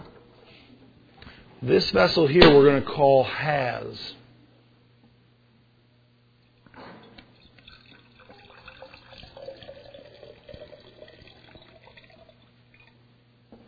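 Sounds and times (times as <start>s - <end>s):
speech: 1.6s - 4.2s
water poured into a vessel: 7.1s - 13.0s.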